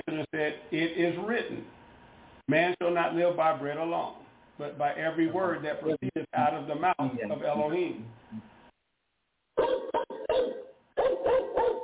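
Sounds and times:
speech: 0.8s - 1.8s, 2.5s - 8.5s
dog barking: 9.6s - 11.8s.

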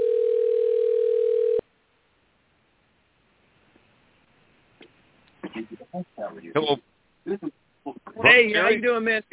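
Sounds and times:
telephone dial tone while placing call: 0.0s - 1.6s
speech: 6.0s - 7.5s, 8.4s - 9.3s.

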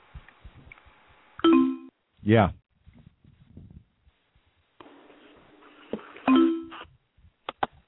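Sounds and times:
phone message notification chime: 1.4s - 1.9s, 6.3s - 6.8s
speech: 2.3s - 2.6s.

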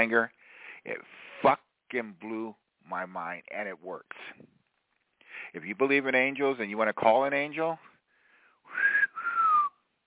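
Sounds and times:
speech: 0.0s - 4.6s, 5.5s - 7.9s
person whistling: 8.7s - 9.8s.

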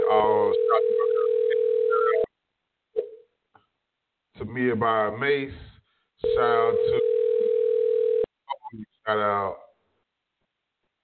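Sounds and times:
telephone ringback tone on an unanswered call: 0.2s - 2.3s, 6.2s - 8.3s
speech: 4.6s - 5.7s, 6.3s - 7.1s, 8.7s - 9.6s.

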